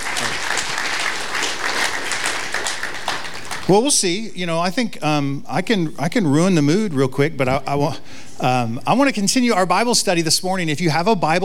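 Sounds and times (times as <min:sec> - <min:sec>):
crowd clapping: 0:00.0 - 0:04.0
speech: 0:03.7 - 0:11.4.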